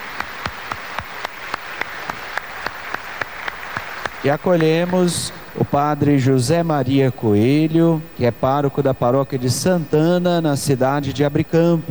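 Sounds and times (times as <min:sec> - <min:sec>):
audience applauding: 0:00.0 - 0:06.4
speech: 0:04.2 - 0:11.9.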